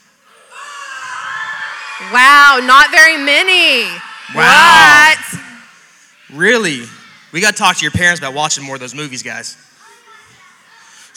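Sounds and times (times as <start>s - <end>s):
children letting out a rebel yell: 0.3s - 7.3s
speech: 2.0s - 5.4s, 6.3s - 9.7s.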